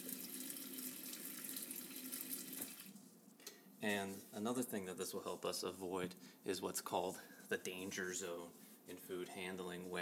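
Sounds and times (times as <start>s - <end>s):
tap running cold water into a sink: 0.0s - 2.9s
speech: 3.8s - 10.0s.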